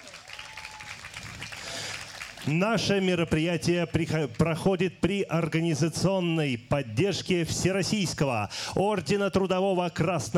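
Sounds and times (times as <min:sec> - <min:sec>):
concert audience applause: 0:00.0 - 0:02.6
speech: 0:02.5 - 0:10.3.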